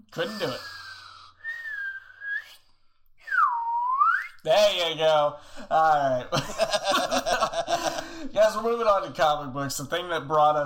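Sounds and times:
speech: 0.1 - 0.7, 4.4 - 10.6
person whistling in imitation of a slide whistle: 1.4 - 4.4
laughter: 6.0 - 8.3.

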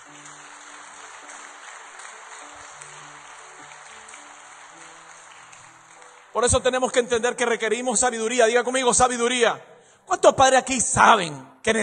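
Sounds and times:
audience applauding: 0.0 - 7.5
speech: 6.3 - 11.8.

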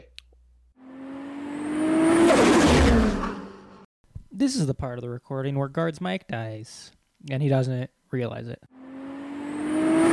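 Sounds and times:
racing car engines revving while racing downhill: 0.8 - 3.8, 8.8 - 10.1
speech: 4.4 - 8.8.

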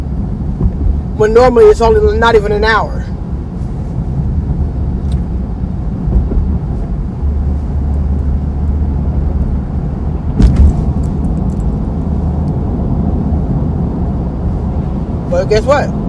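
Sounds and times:
car engine and tyre drone on a road in rainy weather: 0.0 - 16.0
speech: 1.2 - 3.1, 15.4 - 16.0
brief thump: 6.1 - 6.5, 10.4 - 11.1.

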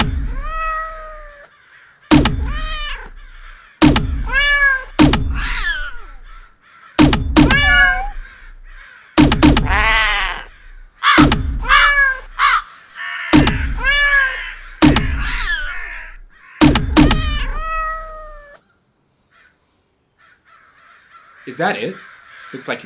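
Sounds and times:
sharp thunk: 0.0 - 0.4, 2.1 - 6.4, 7.0 - 12.6, 13.3 - 17.6
cat meowing: 0.3 - 1.5, 2.4 - 3.2, 4.2 - 6.1, 7.5 - 8.2, 9.6 - 12.6, 13.6 - 16.2, 17.0 - 18.6
crows cawing: 0.3 - 22.8
speech: 21.5 - 22.8.

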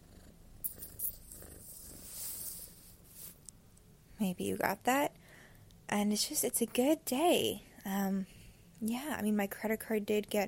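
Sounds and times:
cat purring: 0.0 - 3.3
speech: 4.2 - 5.1, 5.9 - 10.4.

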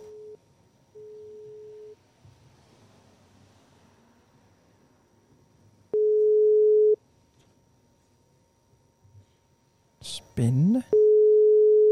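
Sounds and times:
telephone ringback tone: 1.0 - 2.0, 6.0 - 7.0, 11.0 - 11.9
speech: 10.4 - 11.0.

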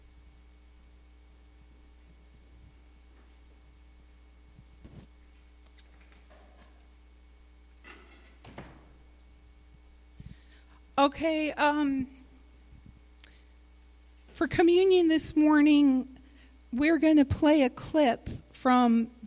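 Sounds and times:
steady electrical hum: 0.0 - 19.2
door swinging and closing: 7.8 - 9.0
speech: 11.0 - 12.2, 14.4 - 16.1, 16.7 - 19.2.

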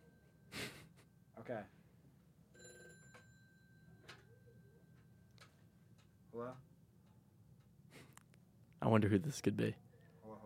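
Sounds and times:
speech: 1.5 - 1.8, 6.3 - 6.7, 8.8 - 9.8
phone ringing for an incoming call: 2.6 - 4.8.

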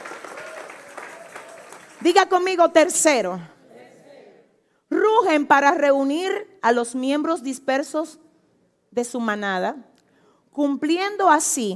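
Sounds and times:
crowd clapping in loud dense applause: 0.0 - 2.1
speech: 2.0 - 3.6, 5.2 - 8.2, 8.9 - 9.9, 10.6 - 11.7.

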